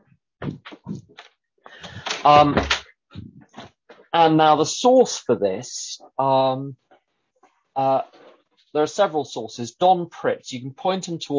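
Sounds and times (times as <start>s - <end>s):
shuffling movements: 0.4s - 4.2s
door swinging shut with a short creak and soft thud: 1.8s - 2.8s
speech: 2.2s - 2.8s, 4.2s - 6.8s, 7.8s - 11.3s.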